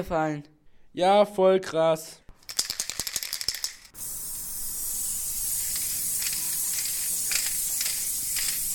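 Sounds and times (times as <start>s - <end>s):
speech: 0.0s - 2.2s
spray paint can rattling as it is shaken: 2.4s - 8.7s.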